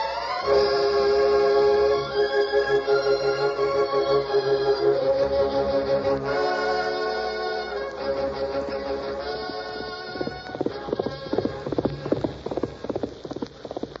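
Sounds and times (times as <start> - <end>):
orchestral score: 0.0 - 10.5
horse galloping with hooves clip-clopping: 0.0 - 13.9.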